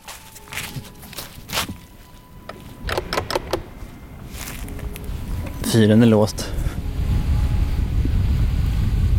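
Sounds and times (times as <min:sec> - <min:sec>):
footsteps crunching on a path from a stone beach toward a lighthouse: 0:00.0 - 0:02.9, 0:03.8 - 0:05.9
low outdoor hum: 0:00.0 - 0:09.1
speech: 0:05.8 - 0:06.5.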